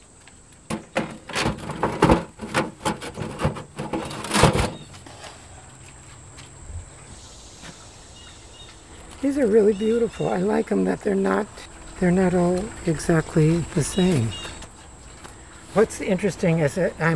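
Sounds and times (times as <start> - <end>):
thick metal bread oven door scraped and knocked into place: 0.6 - 5.0
speech: 9.2 - 14.5, 15.7 - 17.1.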